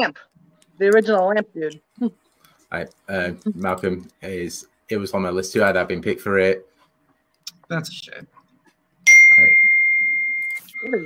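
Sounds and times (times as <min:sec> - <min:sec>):
speech: 0:00.0 - 0:06.7, 0:07.7 - 0:08.4, 0:10.8 - 0:11.0
bright electronic notification chime: 0:09.1 - 0:11.0.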